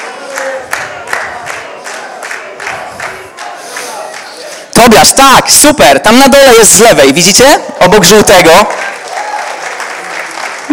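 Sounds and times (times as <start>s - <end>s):
applause from workshop participants: 0.0s - 4.9s, 8.4s - 10.7s
speech: 4.8s - 8.8s.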